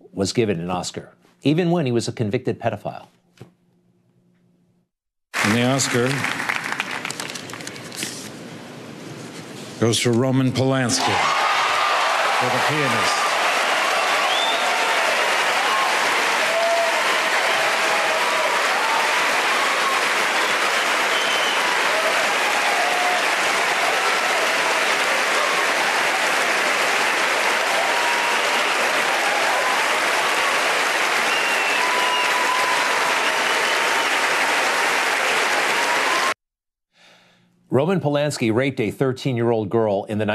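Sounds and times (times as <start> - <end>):
speech: 0.2 - 3.5, 5.4 - 6.5, 9.8 - 11.4, 12.4 - 13.2, 37.8 - 40.3
audience applauding at a film awards ceremony: 5.3 - 8.0, 11.0 - 36.4.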